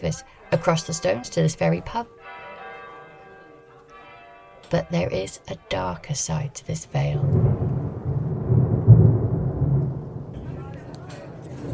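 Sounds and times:
speech: 0.0 - 2.2, 4.7 - 7.7
deep rolling rumble of thunder: 7.2 - 11.7
steady rain: 7.2 - 11.7.

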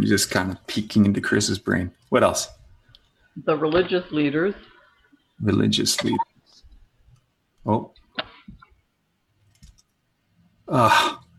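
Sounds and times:
speech: 0.0 - 2.6, 3.4 - 4.7, 5.4 - 6.3, 7.6 - 8.0, 10.7 - 11.2
faint clicks of laptop keys being typed: 9.4 - 9.9.

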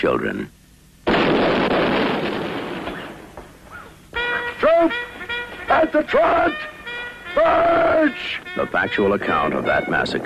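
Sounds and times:
speech: 0.0 - 0.6, 4.8 - 5.1, 5.8 - 6.7, 7.4 - 10.2
cavalry gunfire volley in a film massacre scene: 1.1 - 3.4.

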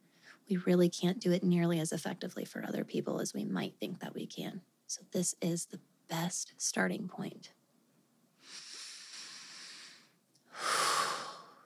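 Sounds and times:
speech: 0.5 - 7.6
deep cleansing breaths during a guided breathing exercise: 8.4 - 11.6.

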